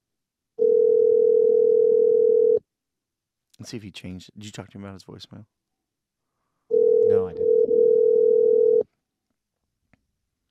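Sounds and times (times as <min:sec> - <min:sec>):
telephone ringback tone of an outgoing call: 0:00.6 - 0:02.6, 0:06.7 - 0:08.8
speech: 0:03.6 - 0:05.6.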